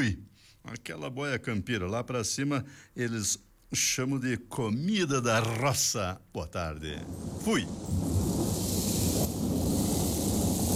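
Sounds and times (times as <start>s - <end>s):
speech: 0.0s - 8.3s
deep thunder rumble: 7.0s - 10.7s
dense rain pouring: 7.0s - 10.7s.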